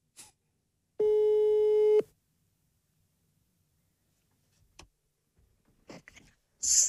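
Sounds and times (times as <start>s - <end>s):
telephone tone while calling someone: 1.0s - 2.1s.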